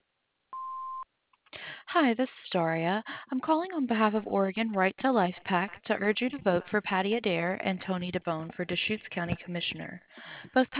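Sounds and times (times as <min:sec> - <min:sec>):
answering machine beep: 0:00.6 - 0:01.0
speech: 0:01.9 - 0:10.7.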